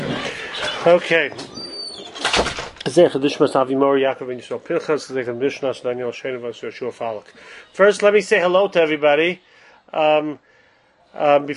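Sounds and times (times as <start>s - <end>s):
door shutting with a loud thud: 0.0s - 2.9s
speech: 0.8s - 1.5s, 2.4s - 10.5s, 11.1s - 11.5s.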